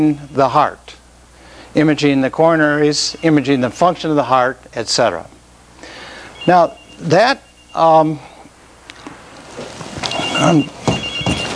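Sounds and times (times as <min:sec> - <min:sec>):
speech: 0:00.0 - 0:01.0, 0:01.7 - 0:05.3, 0:06.4 - 0:08.3, 0:10.4 - 0:10.8
mobile phone ringing with bright electronic tone: 0:06.0 - 0:08.0, 0:10.0 - 0:11.5.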